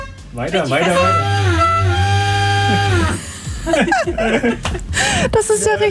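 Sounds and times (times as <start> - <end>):
bus horn honking a melody: 0.0 - 3.6
speech: 0.4 - 2.0, 2.7 - 5.8
laughter: 2.7 - 5.4.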